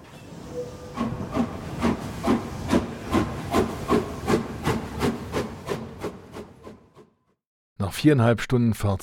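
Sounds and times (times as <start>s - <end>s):
steam train hissing bursts: 0.3s - 5.2s
steam train chuffing into a main station: 0.3s - 6.8s
speech: 8.0s - 9.0s.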